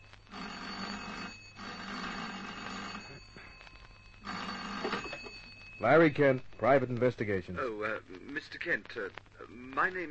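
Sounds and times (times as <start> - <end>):
old-fashioned telephone bell ringing in an office: 0.3 - 6.2
speech: 5.8 - 10.0.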